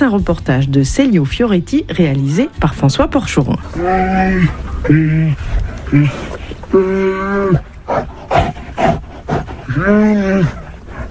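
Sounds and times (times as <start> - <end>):
speech: 0.0 - 9.0, 9.7 - 10.6
two caged bears wailing in distress in a metal cage: 3.6 - 11.0.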